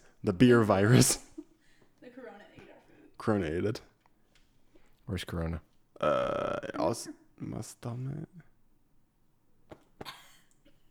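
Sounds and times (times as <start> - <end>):
speech: 0.2 - 1.2, 3.2 - 3.9, 5.1 - 8.5
person giving forced coughs: 0.9 - 1.4, 10.0 - 10.5.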